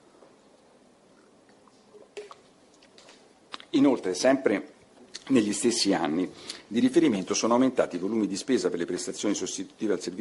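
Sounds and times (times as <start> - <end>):
low room hiss: 0.0 - 10.1
person sipping water: 1.1 - 3.7
soft wet mouth sounds: 1.2 - 3.7
speech: 3.7 - 10.1.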